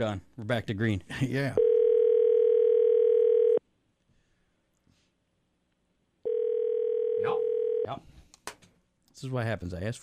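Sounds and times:
speech: 0.0 - 1.6, 7.9 - 8.1, 9.2 - 10.0
ringback tone of an outgoing telephone call: 1.6 - 3.6, 6.2 - 7.9.

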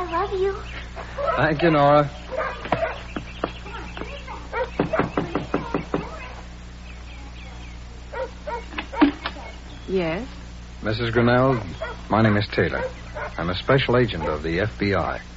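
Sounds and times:
speech: 0.3 - 2.2, 9.9 - 15.3
firm sharp knocks on a trailer door: 2.6 - 6.2.

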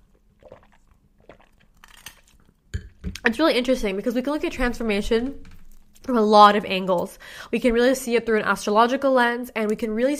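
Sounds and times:
person sipping a drink from a glass: 0.0 - 3.0
speech: 3.2 - 5.5, 6.1 - 10.1.

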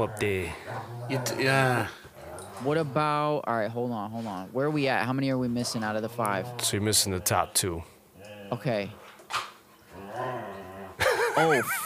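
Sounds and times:
speech: 0.0 - 2.0, 2.6 - 7.9, 8.5 - 9.4, 11.4 - 11.8
dog growling while play-wrestling: 0.0 - 3.1, 5.5 - 9.0, 9.9 - 11.0
laughter: 11.0 - 11.8.

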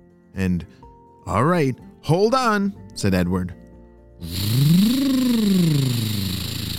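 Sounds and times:
speech: 0.4 - 3.6, 4.2 - 4.8
monster truck engine revving: 4.2 - 6.7.

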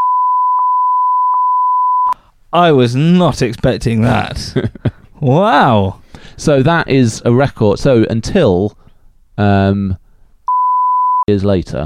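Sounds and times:
high-pitched censor beep bleeping out a word: 0.0 - 2.2, 10.5 - 11.3
speech: 2.5 - 8.8, 9.4 - 10.0, 11.3 - 11.8.

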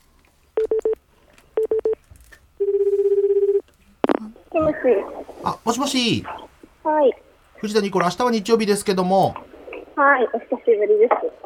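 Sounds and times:
telephone tones as a call is connected: 1.6 - 2.0, 2.6 - 3.6
speech: 4.8 - 9.4, 10.0 - 11.4.

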